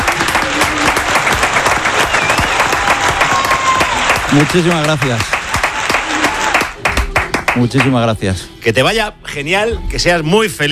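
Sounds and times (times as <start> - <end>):
crowd applause: 0.0 - 7.9
speech: 4.3 - 5.3, 7.6 - 10.7.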